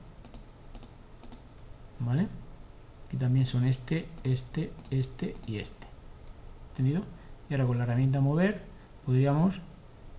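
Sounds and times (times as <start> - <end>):
low hum: 0.0 - 10.1
computer keyboard and mouse clicks while selecting items: 0.2 - 1.5, 4.2 - 6.4, 7.8 - 8.2
speech: 2.0 - 2.4, 3.1 - 5.9, 6.8 - 9.7.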